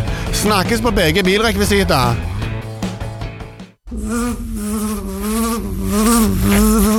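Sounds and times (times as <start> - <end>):
speech: 0.4 - 2.3, 3.9 - 5.1, 5.9 - 6.9
many bees buzzing in a bee yard: 3.9 - 6.9.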